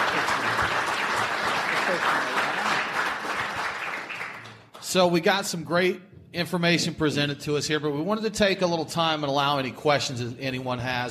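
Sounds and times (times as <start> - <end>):
room full of people applauding: 0.0 - 4.8
speech: 4.9 - 11.0.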